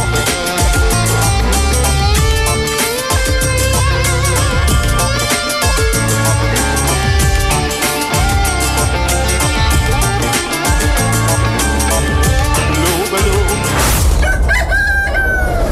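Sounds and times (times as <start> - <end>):
loud dense music: 0.0 - 14.2
rooster crowing: 14.1 - 15.7.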